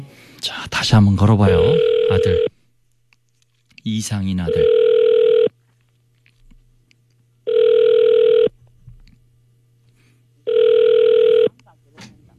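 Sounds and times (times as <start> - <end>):
speech: 0.8 - 2.5, 3.9 - 4.8
phone ringback tone: 1.6 - 2.5, 4.5 - 5.5, 7.5 - 8.5, 10.4 - 11.5.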